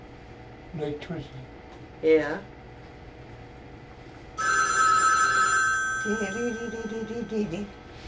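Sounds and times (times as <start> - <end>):
speech: 0.7 - 2.6, 6.0 - 8.0
telephone bell ringing: 4.4 - 7.5.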